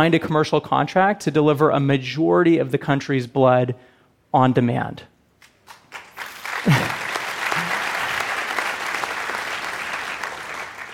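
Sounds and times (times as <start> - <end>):
speech: 0.0 - 5.1
audience applause: 5.7 - 10.9.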